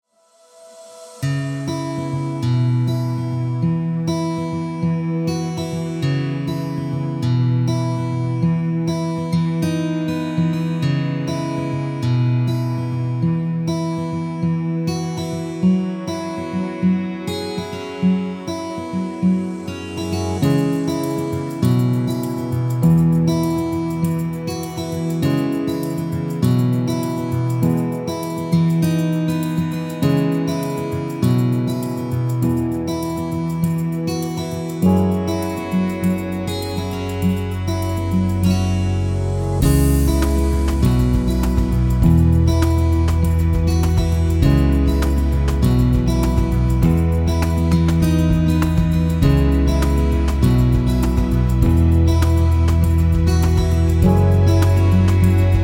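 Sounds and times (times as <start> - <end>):
acoustic folk guitar music: 1.1 - 55.6.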